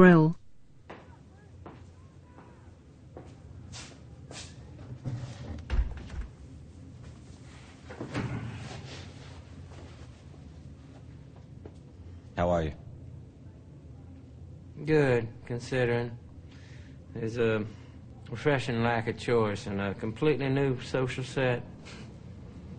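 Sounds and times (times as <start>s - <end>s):
speech: 0.0s - 0.4s, 14.9s - 16.2s, 17.2s - 22.0s
chair scraping and bumping in a police interview room as someone sits down: 4.8s - 6.3s, 7.8s - 9.9s.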